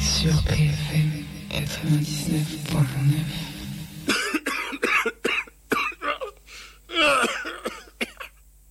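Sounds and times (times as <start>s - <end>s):
speech: 0.2s - 3.5s
person coughing harshly with a raspy hack: 4.1s - 8.4s.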